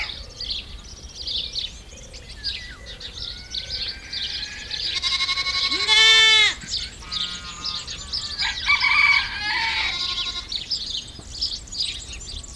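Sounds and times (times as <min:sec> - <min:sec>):
birds chirping and twittering: 0:00.0 - 0:12.5
goat bleating at a goat camp in France: 0:04.4 - 0:08.0, 0:09.6 - 0:10.6.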